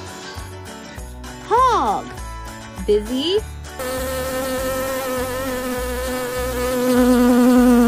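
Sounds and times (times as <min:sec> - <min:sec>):
speech: 0:02.9 - 0:04.1
bee buzzing: 0:03.8 - 0:07.8.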